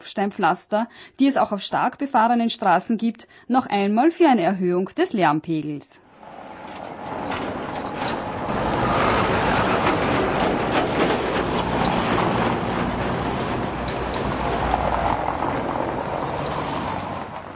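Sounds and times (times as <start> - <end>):
speech: 0.1 - 6.0
tram rumbling past at a street crossing: 6.1 - 17.5
tram wheels clanking and rattling over switches: 6.6 - 14.8.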